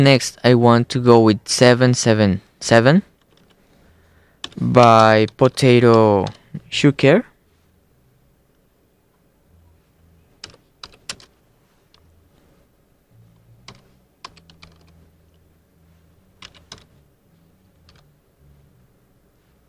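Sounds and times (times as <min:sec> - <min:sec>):
speech: 0:00.0 - 0:03.1, 0:04.6 - 0:07.3
typing on a keyboard: 0:04.4 - 0:06.4, 0:10.4 - 0:11.3, 0:13.6 - 0:15.0, 0:16.4 - 0:16.9, 0:17.8 - 0:18.1
soft low hum: 0:06.2 - 0:19.6.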